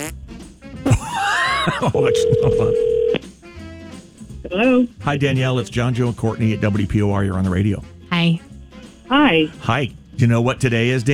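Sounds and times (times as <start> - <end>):
speech: 0.0 - 0.2, 1.7 - 3.2, 4.5 - 8.5, 9.1 - 11.1
laughter: 0.8 - 2.9
steady electronic ringing tone on a phone line: 1.9 - 3.2.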